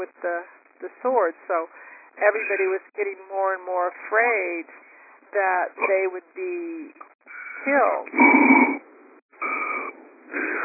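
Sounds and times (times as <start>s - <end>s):
speech: 0.0s - 10.6s
heavy breathing through an open microphone: 1.7s - 2.2s, 4.7s - 5.3s, 9.4s - 10.6s.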